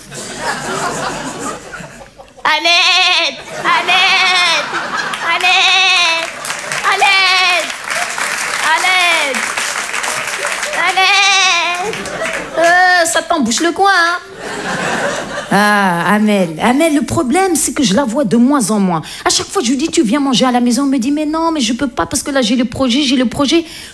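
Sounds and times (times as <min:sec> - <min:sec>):
laughter: 0:00.0 - 0:16.6
person imitating an Eid sheep bleating: 0:02.5 - 0:04.6, 0:05.4 - 0:07.7
speech: 0:02.6 - 0:06.0, 0:10.8 - 0:23.9.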